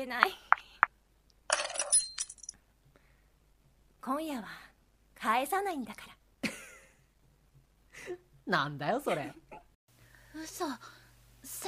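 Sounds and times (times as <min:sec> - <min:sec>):
speech: 0:00.0 - 0:00.5, 0:04.0 - 0:06.2, 0:08.0 - 0:09.7, 0:10.3 - 0:11.6
keys jingling as they are picked up: 0:01.5 - 0:02.6.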